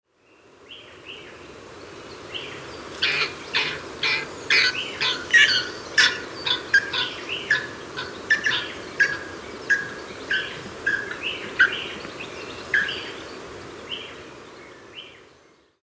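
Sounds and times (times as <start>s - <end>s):
Tasmanian nativehen calling: 2.2s - 14.5s.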